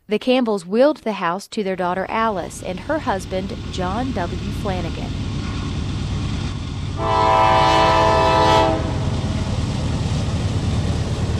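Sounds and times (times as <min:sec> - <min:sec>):
speech: 0:00.1 - 0:05.2, 0:07.0 - 0:07.5
steam train rumbling past: 0:02.1 - 0:11.3
steam train horn blast: 0:07.0 - 0:09.4.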